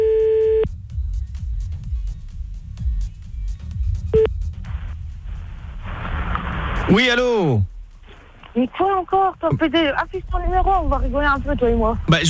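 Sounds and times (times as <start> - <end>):
short beep: 0.0 - 0.7
telephone line tone when calling back: 0.0 - 0.7
low rumble: 0.4 - 12.2
speech: 6.9 - 7.7, 8.6 - 12.2.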